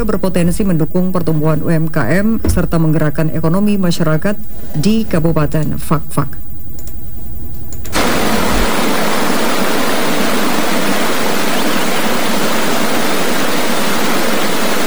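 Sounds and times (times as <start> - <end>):
speech: 0.0 - 6.4
rushing flowing water: 7.9 - 14.8.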